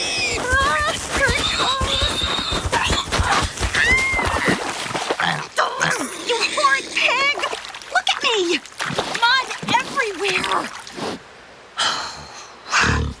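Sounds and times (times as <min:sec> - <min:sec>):
pig charging, squealing and snorting: 0:00.0 - 0:04.6, 0:05.2 - 0:07.3
splashing and splattering in a mud puddle: 0:00.1 - 0:05.5, 0:07.1 - 0:11.0.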